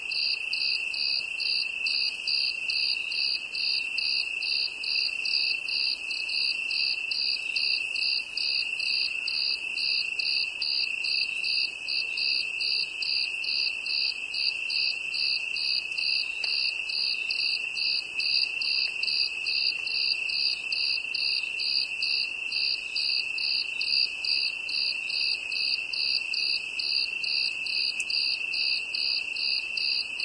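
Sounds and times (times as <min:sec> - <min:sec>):
cricket chirping: 0:00.0 - 0:30.2.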